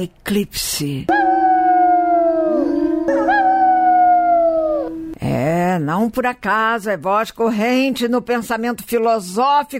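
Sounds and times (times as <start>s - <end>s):
speech: 0.0s - 1.3s, 5.3s - 9.7s
several wolves howling in chorus: 1.1s - 5.2s.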